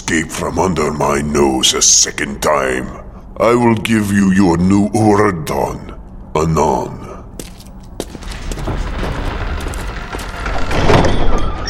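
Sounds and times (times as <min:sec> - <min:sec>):
steady low rumble of room noise: 0:00.0 - 0:11.6
speech: 0:00.1 - 0:07.0
heavy door shutting with a dull thud: 0:08.0 - 0:11.6.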